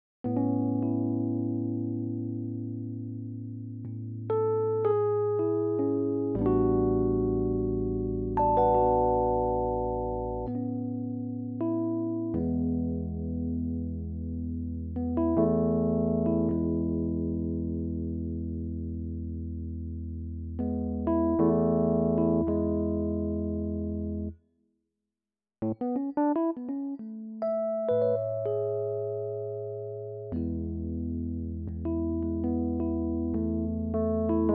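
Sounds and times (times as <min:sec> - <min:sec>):
Rhodes electric piano: 0:00.2 - 0:24.3, 0:25.6 - 0:34.5.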